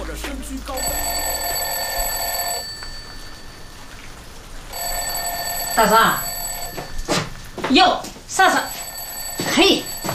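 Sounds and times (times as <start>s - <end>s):
speech: 0.5s - 0.9s, 5.8s - 6.3s, 7.7s - 8.8s, 9.6s - 9.9s
alarm clock ringing with electronic tone: 0.8s - 3.9s, 4.7s - 7.3s, 8.6s - 10.1s.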